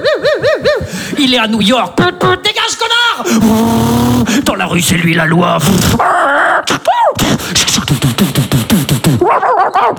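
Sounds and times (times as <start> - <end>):
speech: 1.2 - 9.9
dog barking: 9.2 - 9.9.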